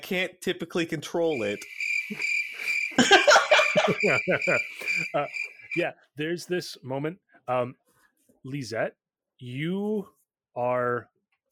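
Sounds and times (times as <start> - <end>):
speech: 0.1 - 2.4, 3.9 - 7.8, 8.4 - 11.1
crickets chirping: 1.1 - 5.8
people laughing: 2.1 - 5.6.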